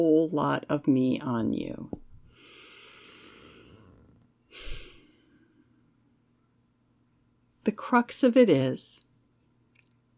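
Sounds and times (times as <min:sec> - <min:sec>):
speech: 0:00.0 - 0:02.0, 0:04.5 - 0:04.8, 0:07.6 - 0:09.0
person taking a deep breath: 0:02.3 - 0:05.8.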